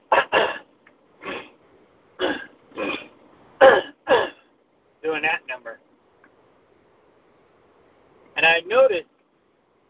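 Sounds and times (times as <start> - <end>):
person clearing throat with rough harrumphs: 0.0 - 1.5, 2.2 - 4.5
speech: 8.6 - 9.1.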